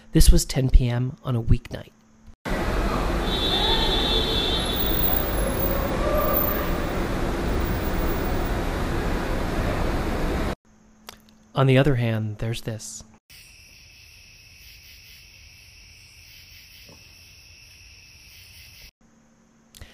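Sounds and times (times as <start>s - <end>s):
speech: 0.1s - 2.0s, 11.6s - 13.4s
engines rumbling in an enclosed parking garage: 2.5s - 10.6s
traffic noise echoing in an enclosed airport parking garage at night: 2.5s - 10.6s
cicadas droning in a garden on a summer night: 3.3s - 8.6s, 13.3s - 19.6s
high whine: 4.6s - 10.6s.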